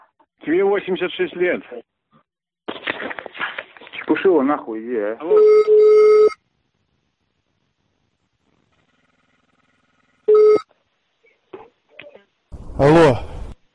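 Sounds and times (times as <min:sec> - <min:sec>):
speech: 0:00.4 - 0:01.9, 0:04.1 - 0:06.0, 0:12.8 - 0:13.3
telephone call ringing tone: 0:05.3 - 0:06.4, 0:08.7 - 0:10.7.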